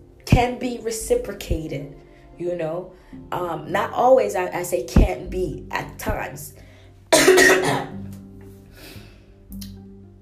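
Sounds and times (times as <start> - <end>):
speech: 0.4 - 6.6
harsh cough trailing into a rumbling throat sound: 7.2 - 8.0.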